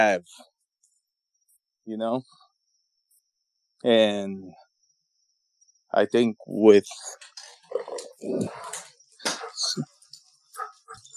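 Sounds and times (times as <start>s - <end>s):
speech: 0.0s - 0.5s, 1.9s - 2.4s, 3.8s - 4.6s, 5.9s - 9.9s
dogs barking: 7.8s - 9.9s, 10.5s - 11.1s.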